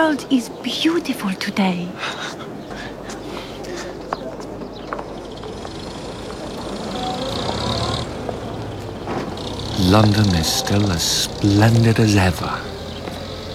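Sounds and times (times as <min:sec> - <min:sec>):
speech: 0:00.0 - 0:02.9, 0:09.9 - 0:12.7
indistinct murmur of voices: 0:00.0 - 0:13.5
steady traffic rumble on a busy street: 0:00.0 - 0:13.5
vehicles passing: 0:00.0 - 0:13.5
footsteps: 0:02.2 - 0:06.5.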